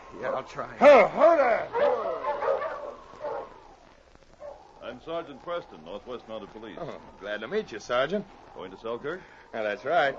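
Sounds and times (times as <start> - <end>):
speech: 0.1 - 2.1, 4.9 - 10.1
dog giving rough faint barking growls: 0.2 - 0.5, 1.7 - 3.6, 4.4 - 4.7, 9.8 - 10.1.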